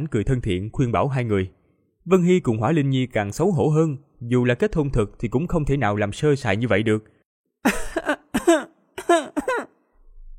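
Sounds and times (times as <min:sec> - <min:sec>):
speech: 0:00.0 - 0:08.6
two embarrassed people coughing: 0:07.7 - 0:09.7.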